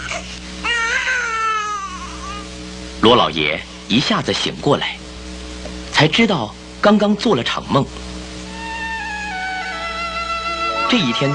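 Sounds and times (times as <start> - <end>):
infant crying with a high-pitched wail: 0.0 - 2.5, 8.5 - 11.3
speech: 3.0 - 5.0, 6.0 - 8.1, 10.9 - 11.3
constant low drone: 8.2 - 11.3.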